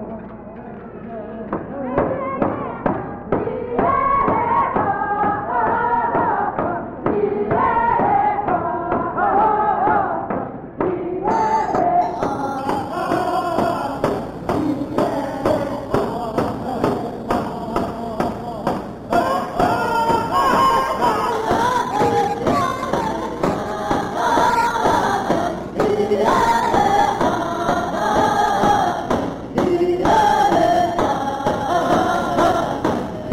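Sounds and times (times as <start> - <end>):
rhythmic drumming and thumping: 1.4 - 33.3
group of voices singing together in a chant: 1.6 - 33.3.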